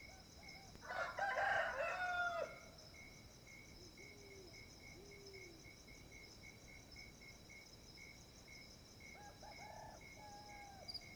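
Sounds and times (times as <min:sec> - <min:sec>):
rooster crowing at dawn at a sugar mill: 0:00.9 - 0:02.6.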